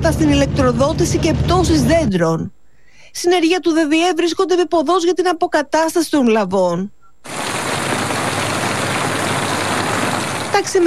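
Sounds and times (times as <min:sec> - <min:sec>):
speech: 0:00.0 - 0:07.4, 0:10.6 - 0:10.8
heavy rain falling: 0:07.3 - 0:10.8.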